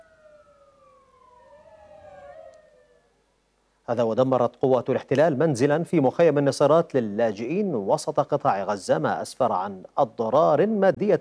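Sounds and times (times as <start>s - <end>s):
ambulance siren wailing: 0.0s - 3.5s
faint road noise: 0.0s - 11.1s
speech: 3.9s - 11.1s.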